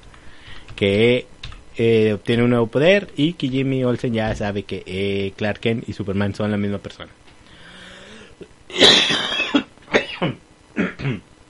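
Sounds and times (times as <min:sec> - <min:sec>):
speech: 0:00.8 - 0:07.2, 0:10.2 - 0:11.3
person coughing harshly: 0:08.7 - 0:11.3.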